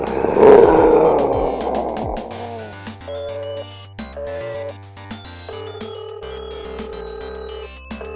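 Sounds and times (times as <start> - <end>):
phone-in contest caller imitating a lion's roar: 0.0 - 2.8.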